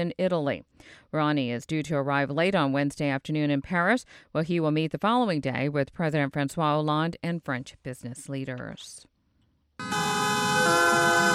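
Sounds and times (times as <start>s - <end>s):
speech: 0.0s - 9.1s
taxi horns blaring during a street protest by taxi drivers: 9.8s - 11.3s.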